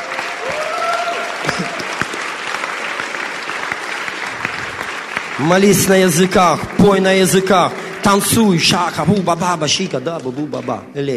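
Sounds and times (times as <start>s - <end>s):
crowd cheering and whooping: 0.0s - 5.0s
crowd applause: 0.0s - 11.1s
speech: 5.4s - 11.1s.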